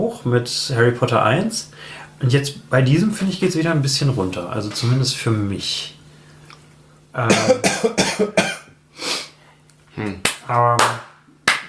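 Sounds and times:
speech: 0.1 - 6.0, 7.1 - 8.5, 10.0 - 11.1
person coughing: 7.2 - 8.7.

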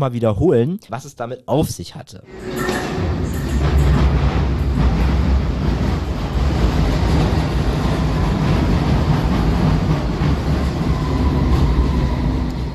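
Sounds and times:
speech: 0.0 - 3.1
metallic squeal of a London Underground train: 2.3 - 4.8, 10.6 - 12.7
faint rhythmic rattling of a London Underground train: 2.3 - 12.3
London Underground train rumbling at Victoria Station: 2.3 - 12.7.

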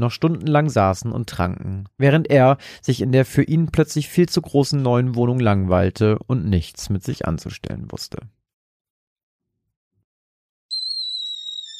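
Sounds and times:
speech: 0.0 - 8.4
kettle whistling on a gas stove: 10.7 - 11.7.

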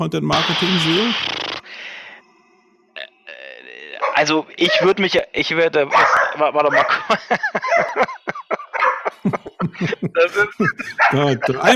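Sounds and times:
speech: 0.0 - 1.4, 4.2 - 8.2, 9.2 - 11.7
dog barking: 5.9 - 9.2, 11.0 - 11.5
laughter: 5.9 - 11.7.

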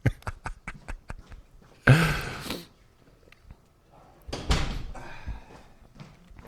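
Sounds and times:
footsteps: 0.4 - 6.4
shuffling: 0.6 - 6.4
door pushed shut with scraping and a thud: 4.3 - 5.0.

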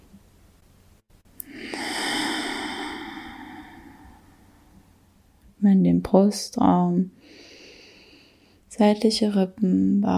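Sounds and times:
slow breath out during a guided breathing exercise: 1.4 - 5.0, 7.2 - 8.6
speech: 5.6 - 7.4, 8.7 - 10.1.

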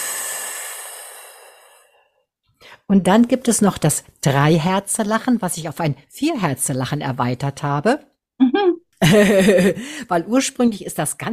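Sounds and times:
person exhaling during a relaxation breathing exercise: 0.0 - 2.8
speech: 2.9 - 11.3
laughter: 8.5 - 9.9.

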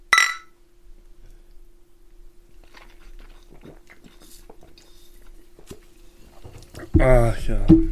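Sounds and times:
glasses clinking in a toast: 0.1 - 0.5
sipping and swallowing with small wet clicks: 2.6 - 5.5
speech: 7.0 - 7.9.

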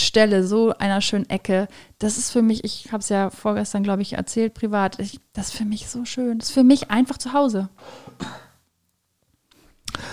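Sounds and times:
speech: 0.1 - 8.4
faint breathing: 7.8 - 8.2, 9.5 - 10.1
person coughing: 7.9 - 8.6.

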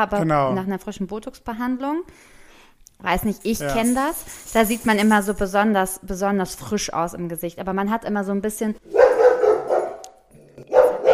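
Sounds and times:
speech: 0.0 - 2.4, 3.0 - 9.2
pet dog barking loudly: 8.9 - 11.1.

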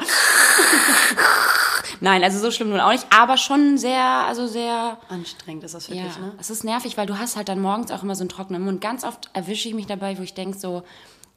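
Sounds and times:
imitated wheezy breathing of an old chain smoker: 0.0 - 2.0
speech: 2.0 - 11.2.

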